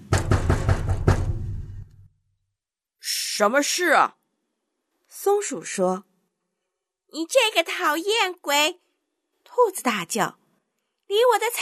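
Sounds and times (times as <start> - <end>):
hard forceful knocks on a door: 0.0 - 1.9
speech: 3.4 - 4.2, 5.2 - 6.1, 7.1 - 8.8, 9.5 - 10.4, 11.1 - 11.5.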